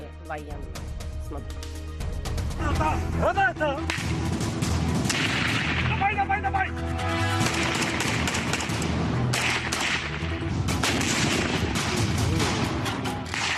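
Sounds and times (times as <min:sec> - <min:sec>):
speech: 0:00.3 - 0:01.9, 0:02.6 - 0:04.7, 0:06.0 - 0:07.6
gunfire from various weapons during infantry training: 0:03.9 - 0:06.0, 0:07.4 - 0:13.5.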